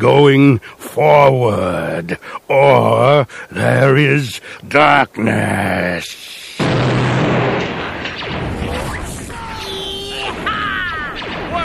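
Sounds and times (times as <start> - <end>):
speech: 0.0 - 7.1
rumbling noisy bed: 6.6 - 11.6
science-fiction blaster fire during an attack: 6.6 - 11.6.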